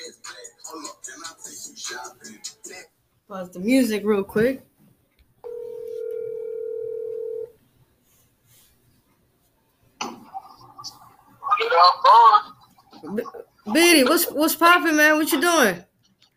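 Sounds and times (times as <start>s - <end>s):
speech: 3.3s - 4.7s, 13.1s - 15.9s
steady electronic phone ringing tone on speakerphone: 5.4s - 7.5s.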